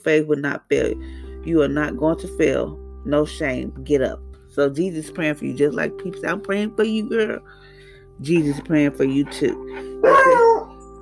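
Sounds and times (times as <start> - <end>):
speech: 0.0 - 7.6, 8.2 - 10.6
dog barking: 10.0 - 10.7.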